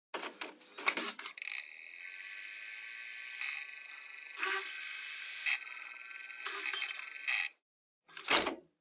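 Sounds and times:
portable stereo MD loading mechanism: 0.8 - 7.5
portable stereo driving noise: 1.9 - 7.5.

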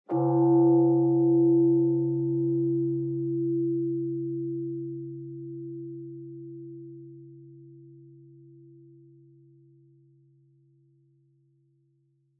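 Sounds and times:
distant low bonsho temple bell: 0.1 - 9.5.

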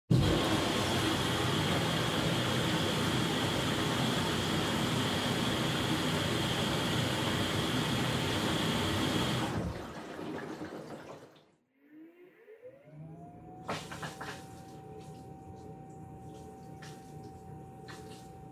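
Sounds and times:
front load washing machine operating: 0.1 - 18.5
water pouring in a front load washing machine: 9.5 - 11.4.

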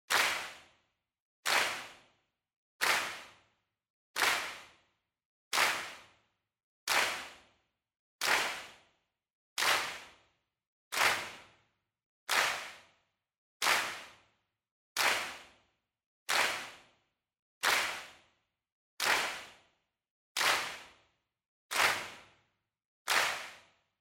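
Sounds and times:
slow handclaps: 0.1 - 0.7, 1.5 - 2.1, 2.8 - 3.4, 4.2 - 4.8, 5.5 - 6.2, 6.9 - 7.6, 8.2 - 8.9, 9.6 - 10.2, 10.9 - 11.6, 12.3 - 13.0, 13.6 - 14.2, 15.0 - 15.6, 16.3 - 17.0, 17.6 - 18.3, 19.0 - 19.7, 20.4 - 21.0, 21.7 - 22.4, 23.1 - 23.8.

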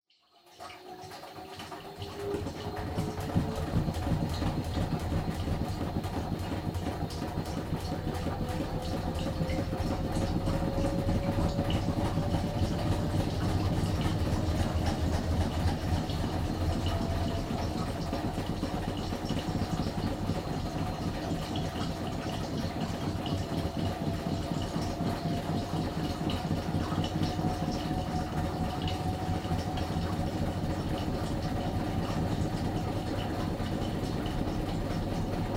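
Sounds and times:
front load washer spin noise: 0.2 - 35.5.

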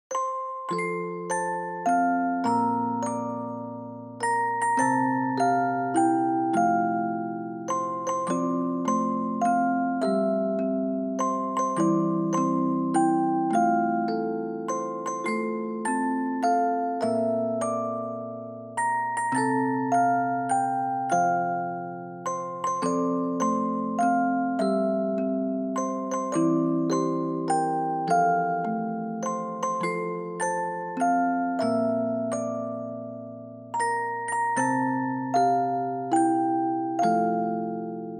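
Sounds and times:
short birthday song with reverb: 0.1 - 38.1.

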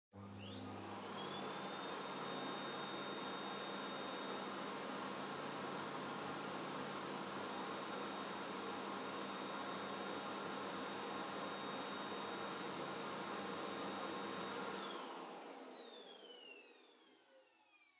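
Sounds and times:
far vacuum cleaner vacuuming soft floor: 0.2 - 17.8.

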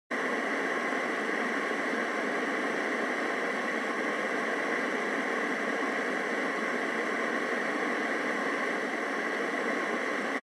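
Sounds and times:
AM radio signal noise: 0.2 - 10.4.

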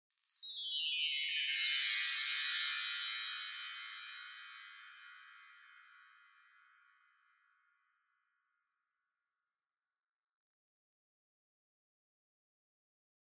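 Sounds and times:
wind chimes with reverb: 0.1 - 6.5.

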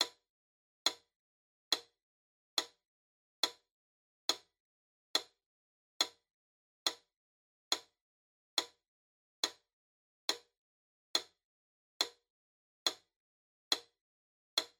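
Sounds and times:
slow metronome click loop: 0.0 - 0.2, 0.8 - 1.1, 1.7 - 2.0, 2.6 - 2.8, 3.4 - 3.7, 4.3 - 5.4, 6.0 - 6.2, 6.8 - 7.1, 7.7 - 8.0, 8.6 - 8.8, 9.4 - 9.7, 10.3 - 11.4, 12.0 - 12.2, 12.8 - 13.1, 13.7 - 14.0, 14.6 - 14.7.

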